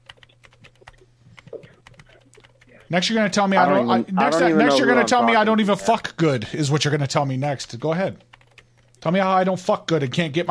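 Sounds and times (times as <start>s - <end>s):
typing on a computer keyboard: 0.0s - 2.9s, 8.2s - 8.9s
speech: 2.9s - 8.3s, 9.0s - 10.4s.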